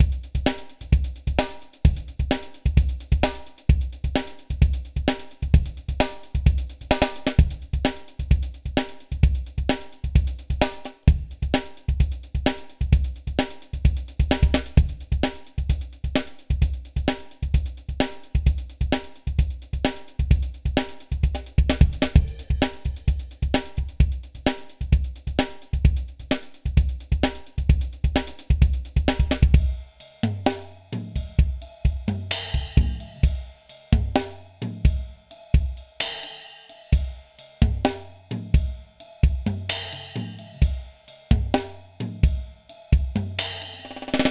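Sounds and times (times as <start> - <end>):
drum loop: 0.0 - 36.2, 37.0 - 44.2.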